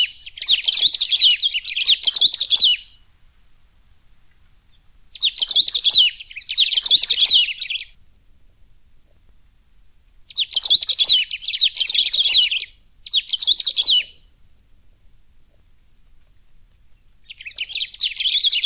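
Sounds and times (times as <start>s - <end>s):
saffron-billed sparrow twittering: 0.0s - 3.0s, 4.7s - 8.0s, 10.3s - 14.3s, 17.2s - 18.6s.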